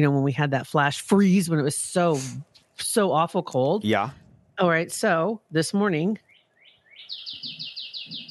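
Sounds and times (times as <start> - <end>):
speech: 0.0 - 6.2
robin singing outdoors: 6.2 - 8.2.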